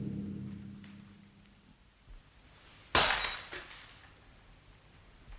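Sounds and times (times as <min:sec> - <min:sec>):
glass clinking: 0:02.9 - 0:03.9
dropped glass breaking: 0:02.9 - 0:04.1.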